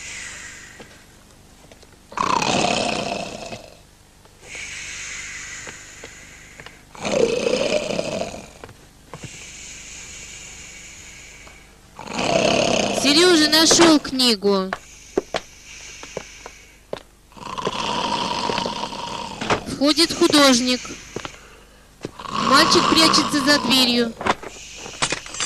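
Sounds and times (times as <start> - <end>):
drunk man snoring loudly on a sofa: 2.1 - 3.8, 4.4 - 13.8, 17.3 - 23.9
speech: 13.4 - 14.8, 19.8 - 21.0, 22.7 - 24.2.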